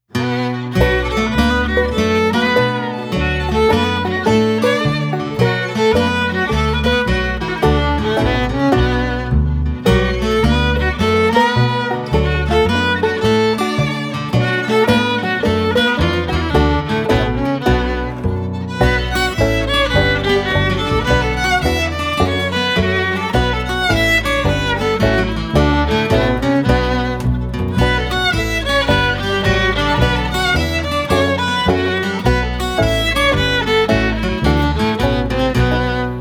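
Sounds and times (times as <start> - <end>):
violin melody: 0.0 - 36.1
slow guitar: 0.1 - 36.1.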